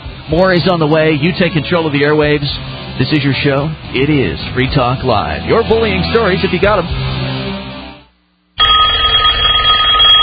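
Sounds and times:
speech: 0:00.3 - 0:07.2
telephone with steady electronic ring: 0:08.6 - 0:10.2.

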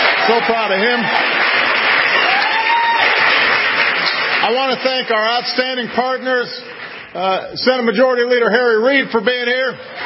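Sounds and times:
audience applauding during a speech event: 0:00.0 - 0:07.8
speech: 0:00.3 - 0:01.4, 0:04.5 - 0:10.0.

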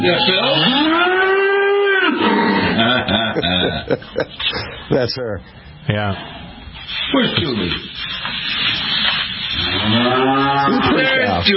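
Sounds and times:
speech: 0:00.0 - 0:01.1, 0:02.2 - 0:08.6, 0:09.6 - 0:11.5
cow about 18 months to 2 years old mooing at an animal sanctuary: 0:00.0 - 0:03.0, 0:09.6 - 0:11.4
laughter: 0:02.6 - 0:05.6.

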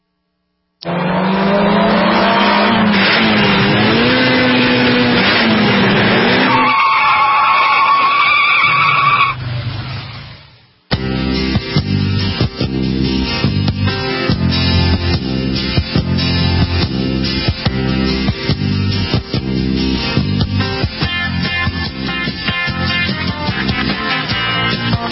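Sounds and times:
car tires skidding on pavement: 0:00.9 - 0:10.3
music: 0:10.9 - 0:25.0.

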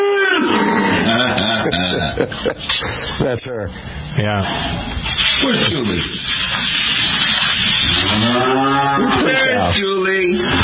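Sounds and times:
laughter: 0:00.8 - 0:03.4
speech: 0:02.2 - 0:07.2, 0:08.0 - 0:10.6
cow mooing: 0:07.8 - 0:09.7.

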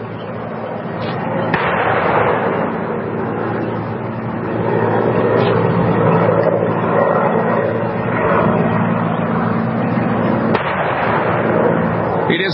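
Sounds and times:
constant heavy outdoor rumble: 0:00.0 - 0:12.5
cannon booms from a ceremonial 21-gun salute: 0:01.4 - 0:02.7, 0:10.5 - 0:11.6.

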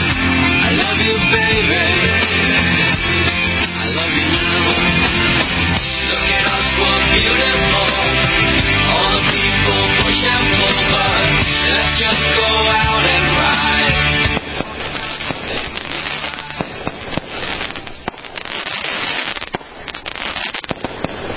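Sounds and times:
fireworks whistling: 0:00.0 - 0:21.3
fireworks crackling pops: 0:13.4 - 0:21.3.

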